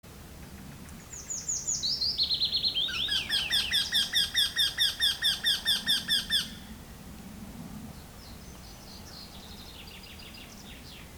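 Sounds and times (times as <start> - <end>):
Eurasian wryneck Jynx torquilla torquilla calling: 1.2 - 6.7.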